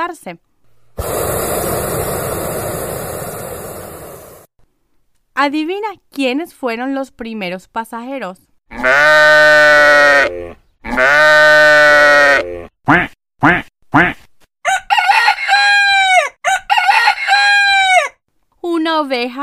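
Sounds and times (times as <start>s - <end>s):
speech: 0.1s - 1.7s, 5.4s - 9.6s, 10.2s - 11.8s, 12.4s - 14.2s, 19.0s - 19.4s
duck quacks and squawky calls: 12.9s - 14.2s
rooster crowing: 14.6s - 18.2s.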